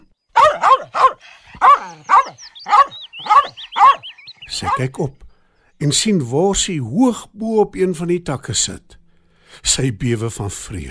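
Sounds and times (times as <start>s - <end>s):
angry dog barking: 0.3s - 4.9s
speech: 4.6s - 5.2s, 5.8s - 9.0s, 9.6s - 10.9s.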